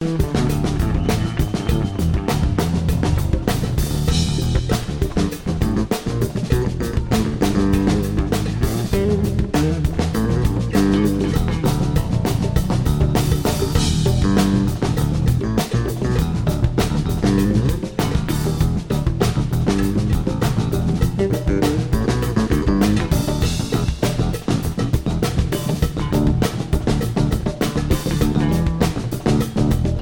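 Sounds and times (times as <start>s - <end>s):
bass: 0.0s - 30.0s
drums: 0.0s - 30.0s.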